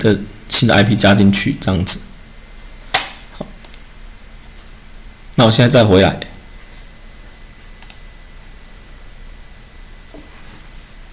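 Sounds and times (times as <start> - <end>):
speech: 0.0 - 2.1, 5.4 - 6.3
steady low hiss: 0.0 - 11.1
clicks while working in database software on a computer: 3.4 - 3.9, 7.8 - 8.0.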